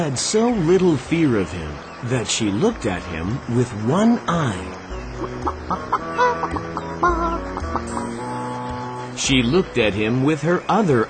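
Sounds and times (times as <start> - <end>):
speech: 0.0 - 6.6, 9.2 - 11.0
hen clucking: 4.8 - 9.2.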